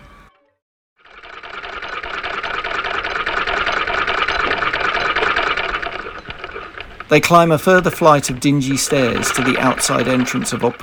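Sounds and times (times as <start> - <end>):
sewing machine running with needle clattering: 1.0 - 10.8
speech: 7.1 - 10.8.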